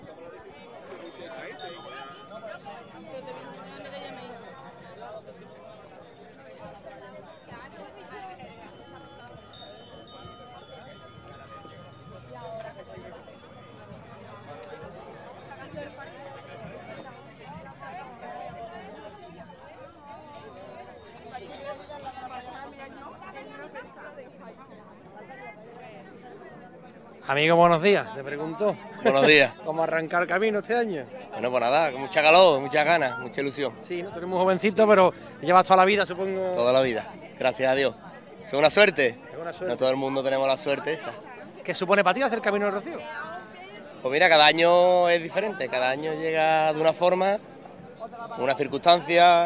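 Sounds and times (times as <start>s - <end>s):
large crowd of pilgrims chattering outdoors at the Rocío procession: 0.0s - 49.4s
clinks: 8.6s - 17.7s
speech: 27.3s - 43.2s, 44.0s - 47.5s, 48.4s - 49.4s.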